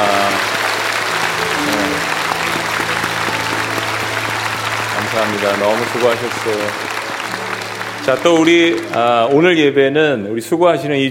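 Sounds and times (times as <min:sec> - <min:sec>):
large audience applauding: 0:00.0 - 0:09.9
speech: 0:05.2 - 0:06.9, 0:08.0 - 0:11.1.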